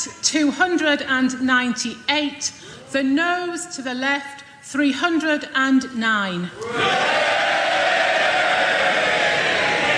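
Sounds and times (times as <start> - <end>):
speech: 0.0 - 7.2
members of parliament cheering and shouting after a vote result: 6.6 - 9.9.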